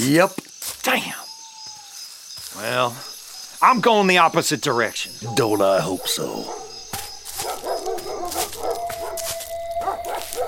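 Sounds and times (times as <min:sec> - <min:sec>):
speech: 0:00.0 - 0:01.2, 0:02.6 - 0:06.6
wild dogs barking and yipping: 0:05.0 - 0:10.4.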